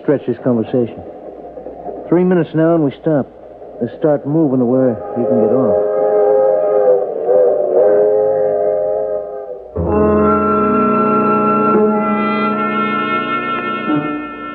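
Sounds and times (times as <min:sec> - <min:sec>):
speech: 0:00.1 - 0:01.2, 0:02.1 - 0:05.9
loud train whistle blowing chord-like blasts: 0:04.9 - 0:14.5.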